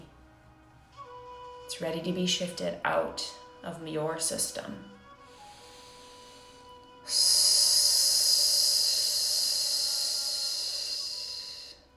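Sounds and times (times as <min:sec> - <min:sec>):
speech: 0:01.7 - 0:05.0
long hissing snake-breath exhalation through the teeth during a breathing exercise: 0:05.2 - 0:11.9.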